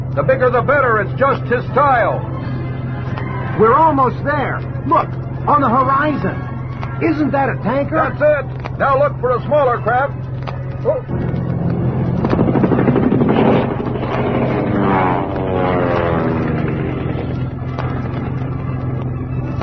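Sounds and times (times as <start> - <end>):
loud airplane engine droning: 0.0 - 19.6
speech: 0.2 - 2.4, 3.6 - 10.2, 10.8 - 11.4.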